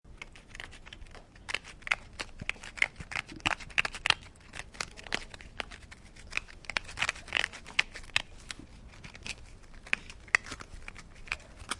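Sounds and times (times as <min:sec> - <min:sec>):
animal scratching: 0:00.1 - 0:11.7.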